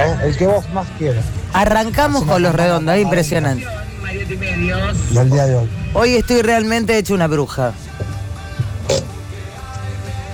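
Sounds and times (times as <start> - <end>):
speech: 0.1 - 7.9
person burping: 8.8 - 9.2.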